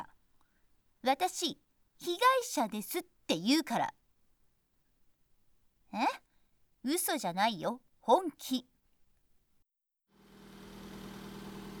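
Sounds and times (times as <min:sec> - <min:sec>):
speech: 0:01.1 - 0:04.0, 0:05.9 - 0:06.2, 0:06.8 - 0:08.7
bus engine arriving and idling: 0:10.3 - 0:11.7.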